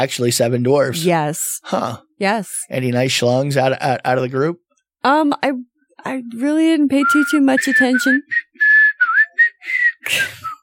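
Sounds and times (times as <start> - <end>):
speech: 0.0 - 8.7, 9.6 - 10.5
person whistling a short bouncy tune: 7.0 - 10.6.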